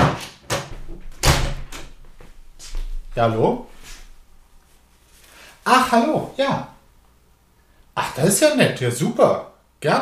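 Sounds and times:
front door bumping and rattling as it swings: 0:00.0 - 0:02.1
speech: 0:03.2 - 0:03.7, 0:05.6 - 0:06.7, 0:08.0 - 0:10.0.

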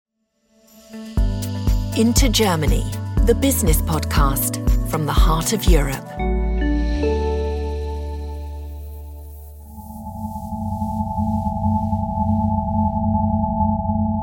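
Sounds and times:
speech: 0:02.0 - 0:06.4
spacey electronic hum sonifying the emission spectrum of hydrogen: 0:06.9 - 0:14.2.

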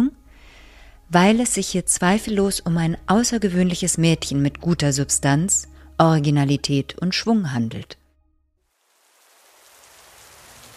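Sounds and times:
speech: 0:01.1 - 0:08.0
heavy rain pouring outdoors beside a riverside wall: 0:08.7 - 0:10.7.

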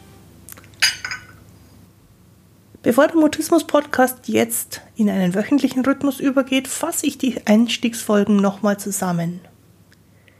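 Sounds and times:
glasses clinking in a toast: 0:00.8 - 0:01.4
speech: 0:02.8 - 0:09.5.

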